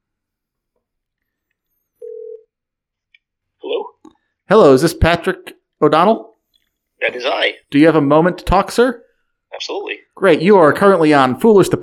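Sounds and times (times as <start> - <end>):
outgoing phone call ringing tone: 2.0 - 2.5
speech: 4.5 - 6.3, 7.0 - 9.0, 9.6 - 11.8.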